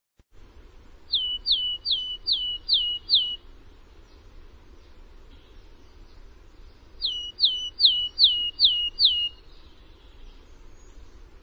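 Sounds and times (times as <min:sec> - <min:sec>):
soft background noise: 0:00.2 - 0:11.4
bird calling with quick descending whistled notes: 0:01.1 - 0:03.4, 0:07.0 - 0:09.5.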